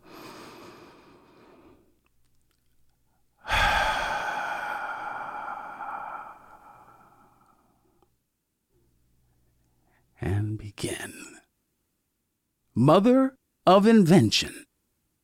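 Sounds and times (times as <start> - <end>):
person taking a deep breath and sighing: 0.0 - 2.0, 3.4 - 7.8
speech: 10.2 - 11.4, 12.8 - 14.6.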